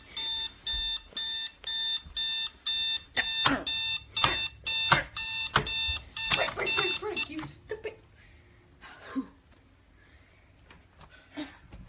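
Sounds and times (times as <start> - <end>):
alarm clock ringing with bright electronic beeps: 0.0 - 7.5.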